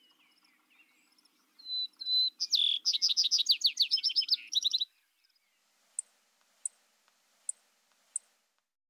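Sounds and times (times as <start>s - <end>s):
Vesper Sparrow singing whistles and jumbled trills: 0.0s - 6.8s.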